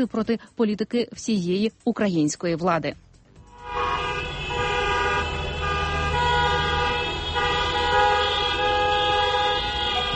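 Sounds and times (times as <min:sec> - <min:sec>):
speech: 0:00.0 - 0:03.1
low rumble of traffic: 0:03.0 - 0:10.1
car horns honking in protest near government buildings in Ukraine: 0:03.5 - 0:10.1.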